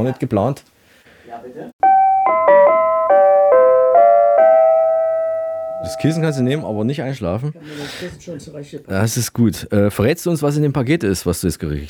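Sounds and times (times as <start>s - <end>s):
speech: 0.0s - 0.7s, 1.3s - 1.8s, 5.8s - 11.8s
doorbell playing a short melodic chime: 1.8s - 6.8s.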